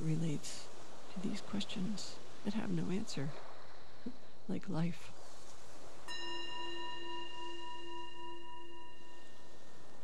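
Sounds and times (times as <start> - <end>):
speech: 0.0 - 5.2, 6.1 - 6.3
meditation bell struck and ringing with a shimmering tone: 6.1 - 10.0.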